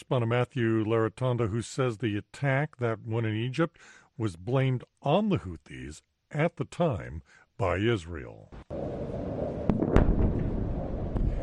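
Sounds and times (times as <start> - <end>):
speech: 0.0 - 9.4
explosions: 8.7 - 11.4
scattered gunfire: 9.7 - 11.4.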